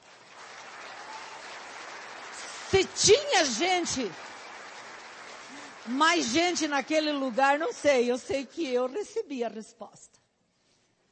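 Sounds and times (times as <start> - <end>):
audience applauding at a live event: 0.0 - 8.2
speech: 2.7 - 4.3, 5.8 - 10.2.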